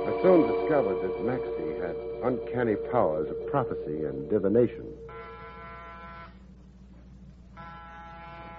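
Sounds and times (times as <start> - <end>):
speech: 0.2 - 5.1
harsh droning door buzzer: 5.1 - 6.4, 7.6 - 8.5.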